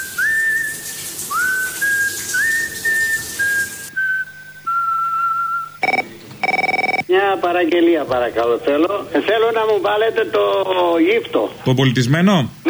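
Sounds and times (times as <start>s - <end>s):
person whistling a melodic tune in the shower: 0.0s - 6.0s
speech: 7.1s - 12.6s.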